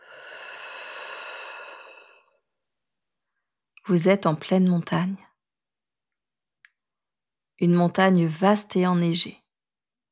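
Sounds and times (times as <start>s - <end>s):
deep breath in and out close to the microphone: 0.0s - 2.5s
speech: 3.9s - 5.3s, 7.6s - 9.4s.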